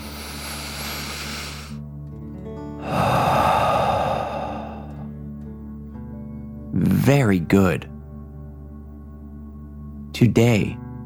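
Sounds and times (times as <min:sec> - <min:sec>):
deep breath exhaled through the mouth: 0:00.0 - 0:01.8, 0:02.8 - 0:05.1
speech: 0:07.1 - 0:07.9, 0:10.2 - 0:10.8.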